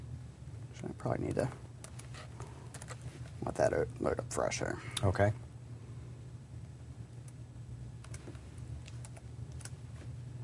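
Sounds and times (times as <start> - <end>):
steady low hum and hiss: 0.0 - 10.4
speech: 1.0 - 1.6, 3.4 - 5.4
faint typing on a computer keyboard: 8.9 - 9.8.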